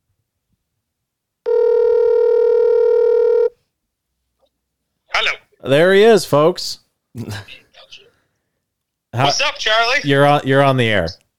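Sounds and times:
telephone dial tone: 0:01.5 - 0:03.5
speech: 0:05.6 - 0:08.0, 0:09.2 - 0:11.2.

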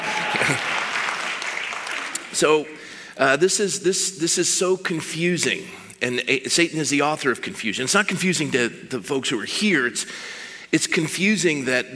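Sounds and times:
audience clapping: 0:00.0 - 0:02.4
speech: 0:02.4 - 0:11.9.

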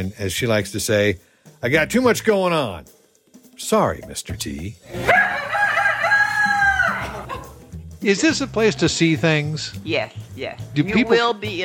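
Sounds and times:
speech: 0:00.0 - 0:03.0, 0:03.6 - 0:05.4, 0:08.0 - 0:11.6
rooster crowing: 0:05.0 - 0:07.6.

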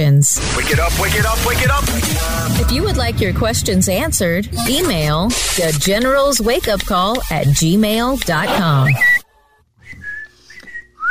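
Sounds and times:
speech: 0:00.0 - 0:09.1
person whistling a short wavering tune: 0:09.8 - 0:11.0.

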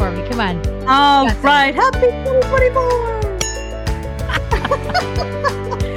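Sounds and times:
speech: 0:00.3 - 0:03.2, 0:04.9 - 0:05.6
bell ringing to ring in the new year: 0:03.4 - 0:04.2
laughter: 0:04.2 - 0:05.9.

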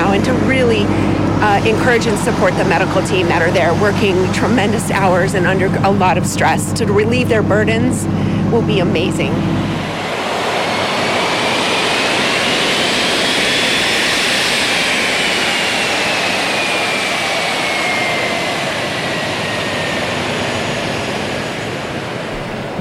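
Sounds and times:
DC-8 cargo plane jet engines on runway in Greensboro North Carolina before takeoff: 0:00.0 - 0:22.7
speech: 0:00.6 - 0:09.8.

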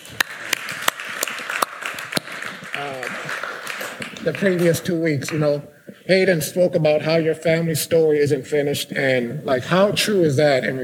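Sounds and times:
audience of students applauding: 0:00.0 - 0:05.4
speech: 0:04.2 - 0:10.8.

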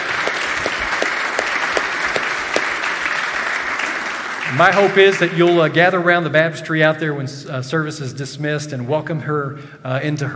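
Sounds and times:
audience applauding: 0:00.0 - 0:05.5
speech: 0:04.5 - 0:10.3.

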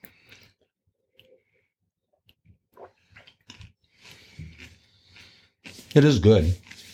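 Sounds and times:
chewing buttery popcorn: 0:03.1 - 0:06.9
speech: 0:06.0 - 0:06.6.

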